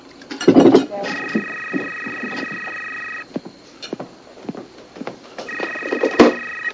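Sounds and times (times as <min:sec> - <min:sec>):
voices: 0:00.7 - 0:03.2, 0:05.5 - 0:06.7
telephone ringing with electronic trills: 0:01.0 - 0:03.2, 0:05.5 - 0:06.7.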